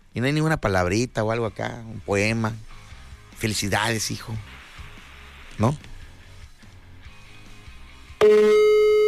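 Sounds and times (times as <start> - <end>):
speech: 0.2 - 2.8, 3.4 - 4.6, 5.6 - 5.9
mobile phone ringback tone on an outgoing call: 8.2 - 9.0.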